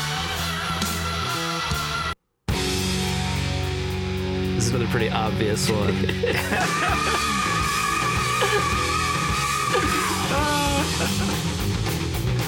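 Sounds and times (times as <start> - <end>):
loud dense distorted guitars: 0.0 - 12.4
speech: 4.6 - 7.3
laughter: 5.6 - 11.6
heavy metal singer's high-pitched scream: 6.5 - 11.2.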